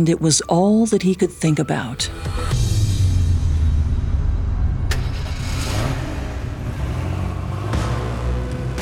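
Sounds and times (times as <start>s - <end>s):
speech: 0.0s - 2.6s
car engine rumbling: 2.4s - 8.8s
road noise: 2.5s - 8.8s.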